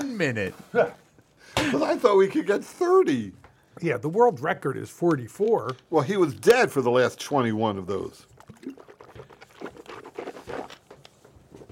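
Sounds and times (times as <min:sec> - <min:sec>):
speech: 0:00.2 - 0:01.0, 0:01.6 - 0:08.8
water gulped or sloshed from a bottle: 0:07.9 - 0:11.2.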